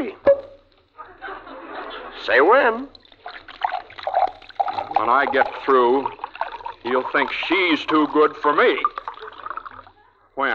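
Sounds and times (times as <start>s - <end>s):
laughter: 1.0s - 2.5s
speech: 2.3s - 3.0s, 5.0s - 6.2s, 6.8s - 9.0s, 10.4s - 10.5s
liquid glugging and trickling poured from a bottle: 2.9s - 10.0s.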